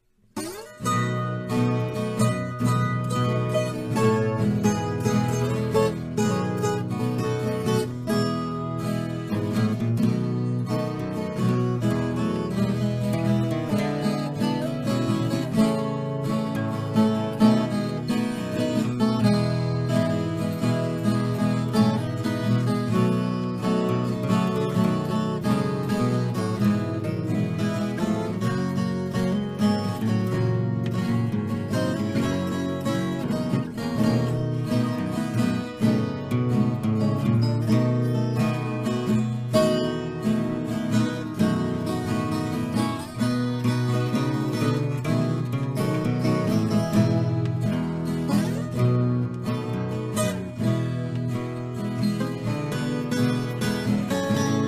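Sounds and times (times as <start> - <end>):
instrumental viola caipira music: 0.0 - 54.6.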